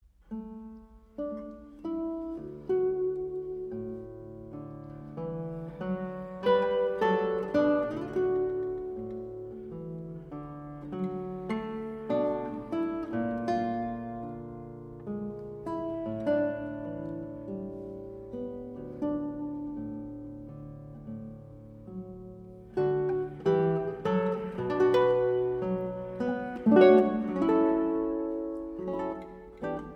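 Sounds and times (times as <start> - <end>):
guitar: 0.0 - 29.9.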